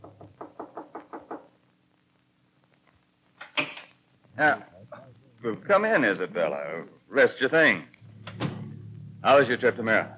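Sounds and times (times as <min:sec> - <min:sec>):
knocking on a wooden door: 0:00.0 - 0:01.5
speech: 0:04.4 - 0:04.7, 0:05.4 - 0:07.9, 0:09.2 - 0:10.1.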